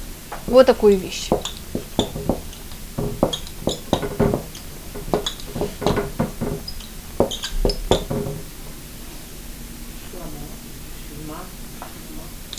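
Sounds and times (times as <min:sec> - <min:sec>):
quick irregular taps of writing on a board: 0:00.3 - 0:08.8
speech: 0:00.5 - 0:02.0
writing on a board: 0:01.3 - 0:08.6.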